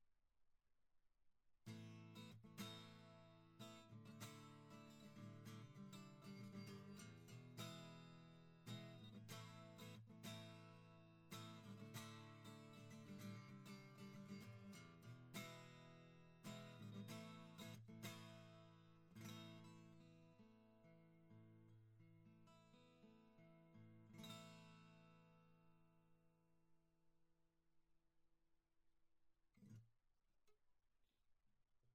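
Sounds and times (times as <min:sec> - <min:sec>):
acoustic guitar: 0:01.7 - 0:26.2.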